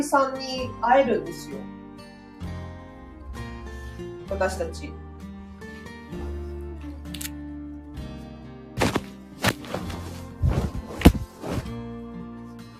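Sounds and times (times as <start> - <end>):
speech: 0.0 - 1.8, 4.3 - 5.0
large bedsheet flapping while folding laundry: 8.8 - 11.9.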